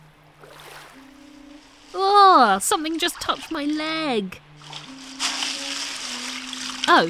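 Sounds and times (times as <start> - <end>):
person wading through knee-deep floodwater in London: 0.4 - 7.0
speech: 2.4 - 4.5, 6.9 - 7.0.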